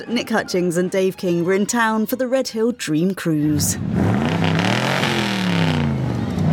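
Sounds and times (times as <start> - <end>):
speech: 0.0 - 4.3
1981 DeLorean car engine revving at a car cruise event in Redhill: 3.5 - 6.5.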